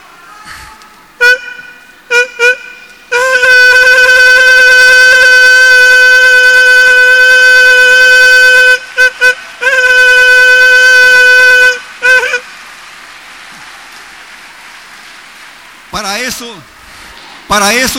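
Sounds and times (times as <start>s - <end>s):
voice mimicking a classic car horn: 0.0s - 12.4s
speech: 17.5s - 17.9s.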